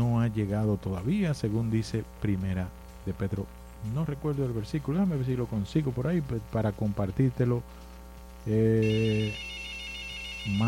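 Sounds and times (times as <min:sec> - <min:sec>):
faint low hum: 0:00.0 - 0:10.6
speech: 0:00.3 - 0:09.5, 0:10.4 - 0:10.6
electronic telephone ring signalling an incoming call: 0:08.8 - 0:10.6.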